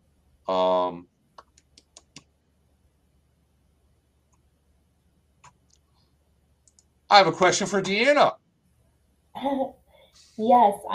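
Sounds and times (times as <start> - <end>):
speech: 0.5 - 1.1, 7.1 - 8.4, 9.4 - 9.8, 10.4 - 10.9
computer mouse clicking: 1.4 - 2.3, 6.6 - 6.9.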